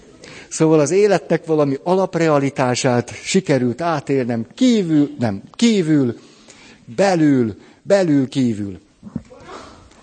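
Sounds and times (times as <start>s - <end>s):
speech: 0.5s - 6.3s, 6.9s - 9.6s
person sneezing: 9.1s - 10.0s.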